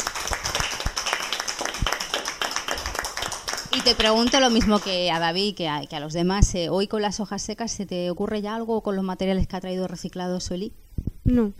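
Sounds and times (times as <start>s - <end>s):
audience applause: 0.0s - 5.3s
speech: 3.8s - 11.5s.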